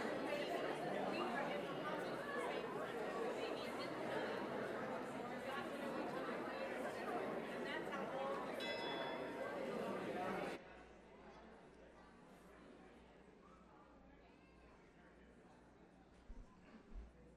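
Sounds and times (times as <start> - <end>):
chatter of a church audience greeting one another: 0.0 - 17.3
hand bell ringing to call audience back: 8.6 - 9.2.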